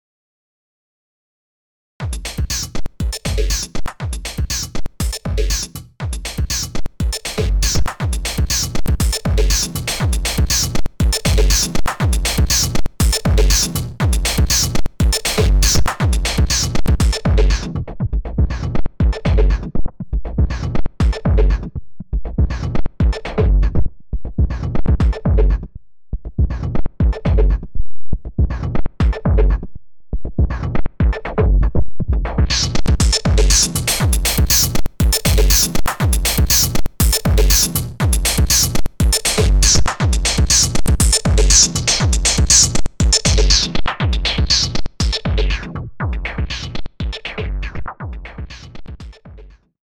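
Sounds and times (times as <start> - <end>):
drums: 2.0 - 19.7, 20.3 - 21.6, 22.3 - 23.8, 24.4 - 25.5, 26.4 - 27.5, 28.4 - 29.5, 30.4 - 49.2.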